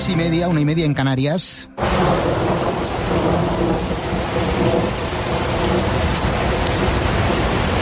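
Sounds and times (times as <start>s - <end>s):
speech: 0.1s - 2.5s, 3.1s - 7.2s
deep rumble of thunder: 1.8s - 7.8s
steady dense rainfall: 1.8s - 7.8s.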